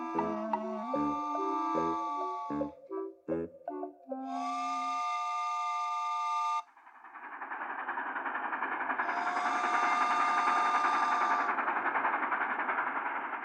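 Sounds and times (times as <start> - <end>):
short horn-like tone: 0.0 - 6.6
train rumbling past with rhythmic clatter: 0.0 - 13.4.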